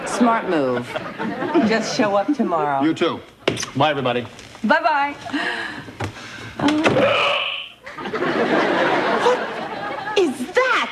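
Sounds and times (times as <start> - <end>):
laughter: 0.0 - 2.2, 7.8 - 10.7
speech: 0.2 - 6.0, 6.6 - 7.4
person hiccuping: 6.8 - 7.8.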